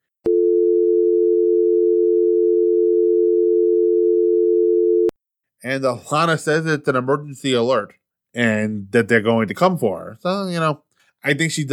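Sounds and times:
telephone dial tone: 0:00.3 - 0:05.1
speech: 0:05.6 - 0:11.7.

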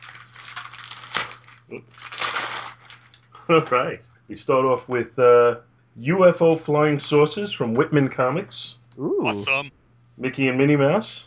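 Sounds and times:
printed wrapping paper crinkling and rustling: 0:00.0 - 0:03.4
faint steady hum: 0:00.0 - 0:11.2
speech: 0:01.7 - 0:02.1, 0:03.5 - 0:11.2.

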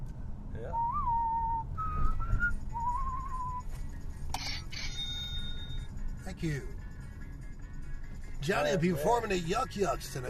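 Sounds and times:
low rumbling background: 0:00.0 - 0:10.2
speech: 0:00.6 - 0:01.0, 0:06.3 - 0:06.8, 0:08.4 - 0:10.2
person whistling a western movie theme: 0:00.7 - 0:03.7.

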